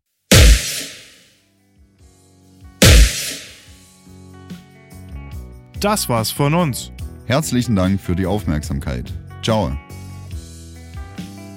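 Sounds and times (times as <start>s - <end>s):
booming designed impact hits with compressed hall reverb tail: 0.3s - 1.2s, 2.8s - 3.6s
speech: 5.8s - 9.9s.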